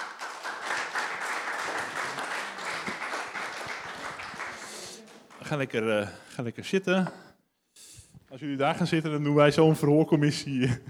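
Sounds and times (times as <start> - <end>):
crowd applauding: 0.0 - 5.6
speech: 5.5 - 7.2, 8.3 - 10.8.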